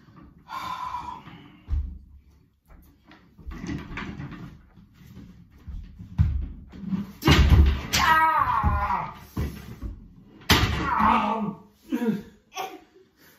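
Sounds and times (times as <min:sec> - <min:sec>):
folded folding chair toppling over when sat on: 0:06.2 - 0:09.7, 0:10.4 - 0:11.3
second bang of the folding chair: 0:07.2 - 0:09.1, 0:10.4 - 0:11.1.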